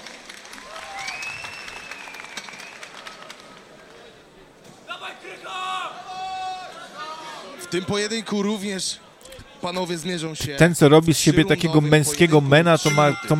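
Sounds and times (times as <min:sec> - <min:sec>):
crowd applauding: 0:00.0 - 0:04.3
people shouting and cheering: 0:04.8 - 0:07.9
speech: 0:07.7 - 0:09.0, 0:09.6 - 0:13.3.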